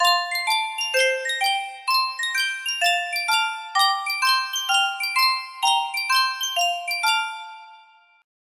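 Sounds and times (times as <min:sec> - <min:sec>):
Sankyo miniature music box melody: 0:00.0 - 0:08.2.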